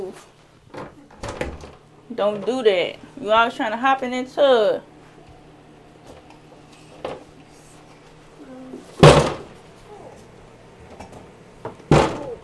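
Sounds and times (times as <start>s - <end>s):
speech: 0.0s - 1.6s, 2.2s - 4.9s
door slamming shut: 9.0s - 9.5s.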